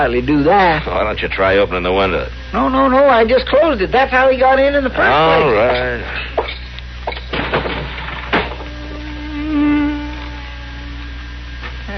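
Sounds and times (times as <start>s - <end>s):
speech: 0.0s - 6.3s
bee buzzing around the room: 8.3s - 11.6s.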